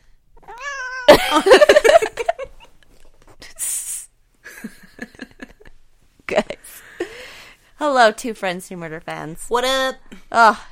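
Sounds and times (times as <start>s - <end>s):
cat meowing and yowling: 0.4s - 1.1s
speech: 1.3s - 1.8s, 7.8s - 10.6s
cat hissy breath: 6.8s - 7.7s.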